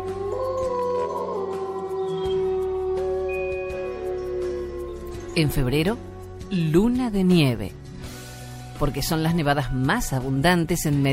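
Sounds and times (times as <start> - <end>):
wolf pack howling: 0.0 - 6.1
speech: 5.4 - 7.8, 8.8 - 11.1.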